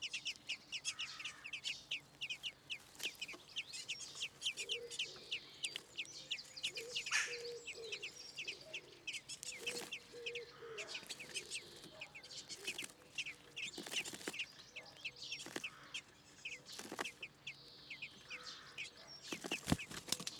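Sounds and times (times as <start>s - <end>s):
common blackbird calling with rapid high clipped notes: 0.0s - 20.3s.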